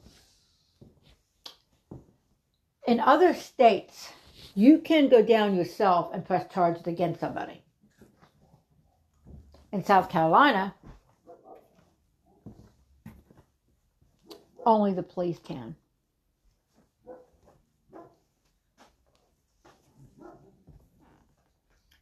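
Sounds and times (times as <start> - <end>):
speech: 2.9 - 7.6, 9.7 - 10.8, 14.6 - 15.8
dogs barking: 11.2 - 12.5, 17.0 - 18.2, 20.2 - 20.6.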